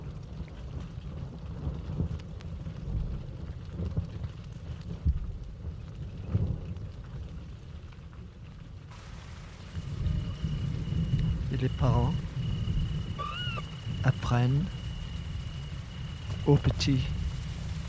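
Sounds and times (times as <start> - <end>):
low rumbling background: 0.0 - 17.8
rain starting to fall: 0.0 - 17.8
speech: 11.6 - 12.2, 14.3 - 14.8, 16.5 - 17.2.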